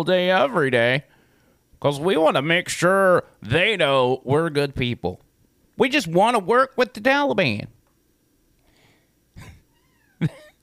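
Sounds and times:
speech: 0.0s - 1.1s, 1.8s - 5.2s, 5.8s - 7.8s, 10.2s - 10.4s
cat meowing: 9.5s - 10.2s.

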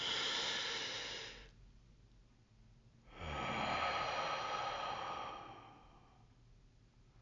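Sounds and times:
deep human breathing: 0.0s - 1.5s, 3.0s - 6.4s.

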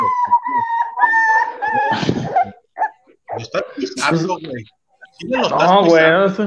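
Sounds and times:
dog whimpering and whining for attention: 0.0s - 4.2s
speech: 4.1s - 6.4s.

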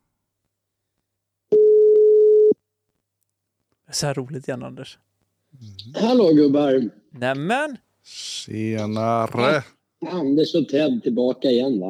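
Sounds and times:
telephone ringback tone of an outgoing call: 1.5s - 2.6s
speech: 4.0s - 11.8s.

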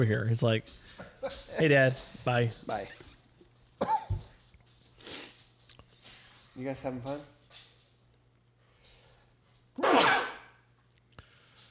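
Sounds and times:
speech: 0.0s - 3.1s, 6.6s - 7.4s
person sneezing: 9.8s - 10.6s.

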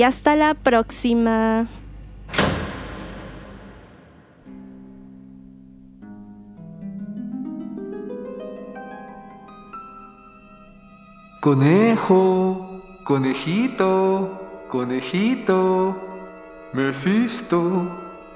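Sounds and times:
speech: 0.0s - 1.8s, 11.4s - 16.1s, 16.7s - 18.1s
door pushed shut with a loud thud: 2.3s - 4.5s.

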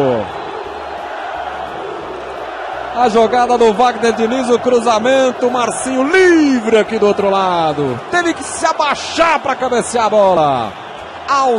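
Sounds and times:
big stadium crowd cheering after a goal: 0.0s - 11.5s
speech: 3.0s - 11.5s.

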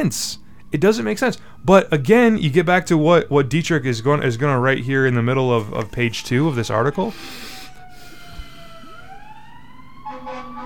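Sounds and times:
speech: 0.0s - 7.5s
fire truck siren wailing: 0.0s - 10.6s
low traffic rumble: 0.0s - 10.6s
deep horn-like blare: 10.0s - 10.6s.

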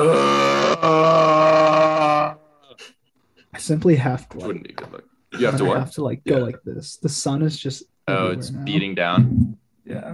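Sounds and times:
person groaning gutturally while bending down to tie shoes: 0.0s - 2.9s
speech: 3.7s - 10.1s.

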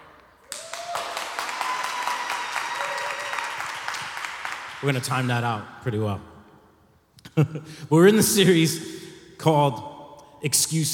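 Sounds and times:
scattered cheers and whoops: 0.4s - 4.4s
crowd applauding with many hands clapping: 0.4s - 5.2s
speech: 4.8s - 6.3s, 7.4s - 10.9s.

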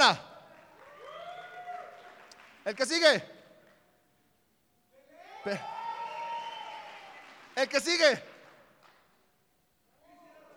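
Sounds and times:
clapping: 0.0s - 3.8s, 5.4s - 9.2s
speech: 0.1s - 0.3s, 2.6s - 3.4s, 5.4s - 5.8s, 7.6s - 8.3s
audience cheering and shouting to pick the best football player: 5.2s - 7.0s.

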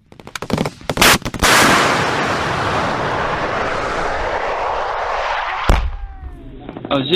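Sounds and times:
bombs dropping and exploding in an airborne combat engagement: 0.6s - 6.9s
long roaring rumble after a heavy blast: 1.7s - 6.9s.

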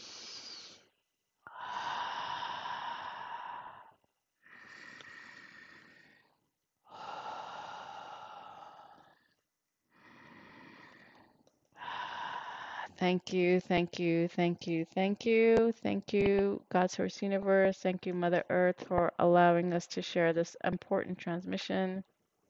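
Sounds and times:
slow deep breaths closing a meditation: 0.0s - 13.0s
speech: 13.0s - 22.1s.

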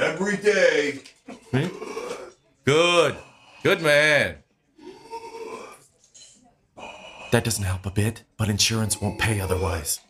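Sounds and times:
speech: 0.1s - 1.8s, 3.7s - 4.4s, 7.4s - 10.0s
deep breathing exercise with slow inhale and exhale: 6.8s - 7.6s.

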